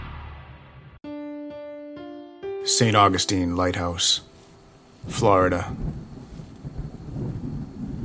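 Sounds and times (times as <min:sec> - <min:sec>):
speech: 0:02.7 - 0:04.3, 0:05.1 - 0:06.1
wind gusting in a storm: 0:04.7 - 0:08.0
rain in a storm: 0:04.8 - 0:08.0.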